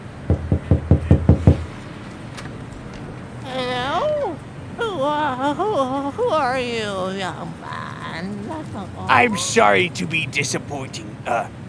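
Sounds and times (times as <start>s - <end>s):
knocking on a wooden door: 0.3s - 1.7s
laughter: 3.5s - 11.5s
speech: 5.4s - 11.6s.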